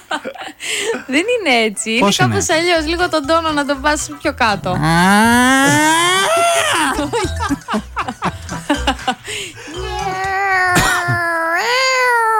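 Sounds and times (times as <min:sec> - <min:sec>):
speech: 0:00.1 - 0:06.3
person vocally imitating mating cats yowling: 0:04.6 - 0:07.1, 0:09.8 - 0:12.3
person laughing: 0:04.6 - 0:09.2.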